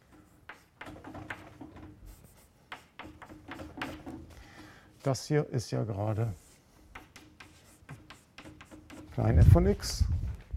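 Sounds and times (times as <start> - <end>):
handwriting strokes scratching out a mathematical note: 0.0 - 4.4, 6.3 - 9.2
speech: 5.0 - 6.4, 9.2 - 10.1.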